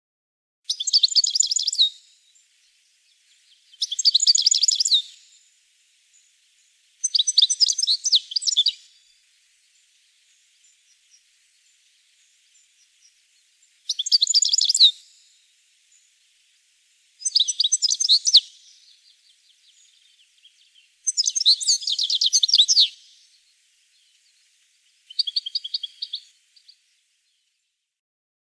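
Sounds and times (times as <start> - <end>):
European goldfinch calling: 0.7 - 2.0, 3.7 - 5.4, 7.0 - 8.9, 13.9 - 15.2, 17.2 - 19.0, 19.6 - 23.1, 25.0 - 26.8.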